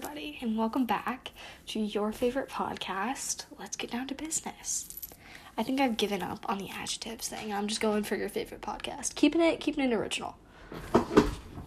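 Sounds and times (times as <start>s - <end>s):
speech: 0.4s - 5.0s, 5.6s - 11.4s
chair creaking with short strained groans: 10.7s - 11.6s.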